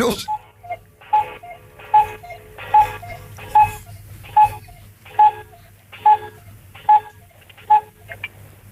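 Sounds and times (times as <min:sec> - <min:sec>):
cuckoo clock calls: 0:00.0 - 0:08.0
low hum: 0:00.0 - 0:08.6
speech: 0:00.1 - 0:00.4.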